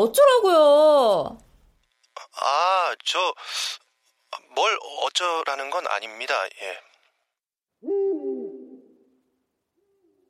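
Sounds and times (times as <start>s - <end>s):
speech: 0.0s - 1.4s, 2.4s - 3.8s, 4.6s - 6.9s
owl hooting in the distance at a house in a city: 7.8s - 9.2s, 9.8s - 10.2s.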